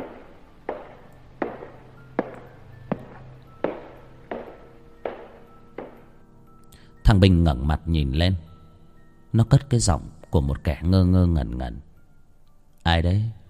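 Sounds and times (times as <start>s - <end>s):
footsteps in a cold prison cell block corridor: 0.0s - 6.0s
speech: 7.1s - 8.5s, 9.3s - 11.9s, 12.8s - 13.4s.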